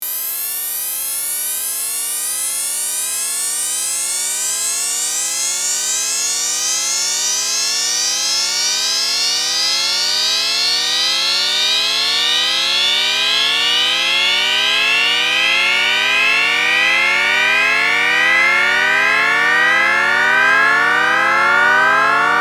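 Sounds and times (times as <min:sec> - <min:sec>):
Risset rhythm illusion perceived as continuously descending from high to low register: 0:08.5 - 0:22.3.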